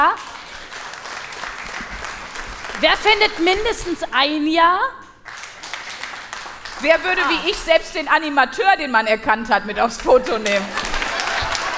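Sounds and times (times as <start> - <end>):
speech: 0.0 - 0.3, 2.8 - 5.0, 6.8 - 10.9
audience clapping in response to a question: 0.0 - 4.1, 5.1 - 8.3, 10.0 - 11.7
laughter: 8.9 - 11.7.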